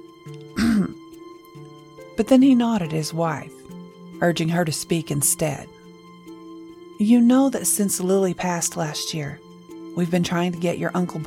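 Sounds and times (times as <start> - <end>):
speech: 0.2 - 0.5, 2.2 - 3.6, 4.2 - 5.8, 7.0 - 9.4, 10.0 - 11.2
man clearing his throat: 0.6 - 1.0.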